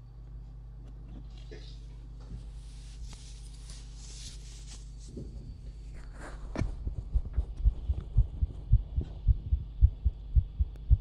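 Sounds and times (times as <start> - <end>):
faint hum: 0.0 - 11.0
fast human heartbeat thumping: 6.5 - 11.0.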